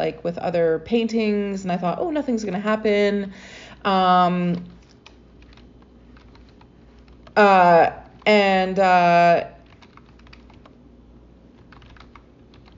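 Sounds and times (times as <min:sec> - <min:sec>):
speech: 0:00.0 - 0:04.8, 0:07.4 - 0:09.6
typing on a computer keyboard: 0:04.5 - 0:07.4, 0:09.6 - 0:10.8, 0:11.6 - 0:12.7.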